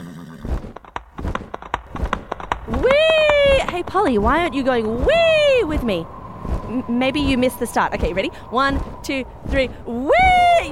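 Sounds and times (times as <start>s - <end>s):
flying horse hooves clip-clopping: 0.4s - 6.7s
speech: 3.8s - 10.7s.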